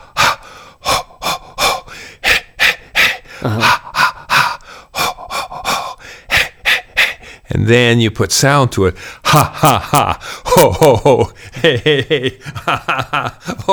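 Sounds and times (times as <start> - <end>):
quick forceful huffing breaths in a laughter breathing exercise: 0.0 - 7.5, 10.2 - 10.5
speech: 3.4 - 3.8, 7.6 - 13.7
laughter: 9.3 - 13.7.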